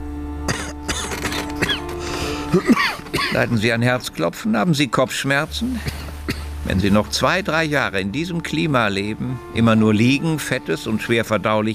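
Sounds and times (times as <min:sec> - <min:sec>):
patient coughing during a doctor's examination: 0:00.5 - 0:03.5, 0:05.6 - 0:06.5
low steady hum: 0:01.4 - 0:11.6
breathing: 0:02.0 - 0:02.6
speech: 0:02.5 - 0:06.0, 0:06.7 - 0:11.7.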